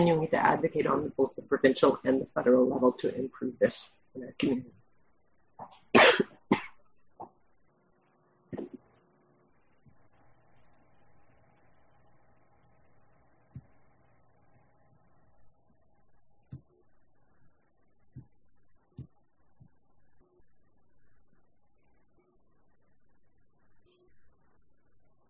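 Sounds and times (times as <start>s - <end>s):
speech: 0.0s - 4.8s
faint low hum: 0.0s - 25.2s
person coughing from a dry throat: 5.6s - 6.8s.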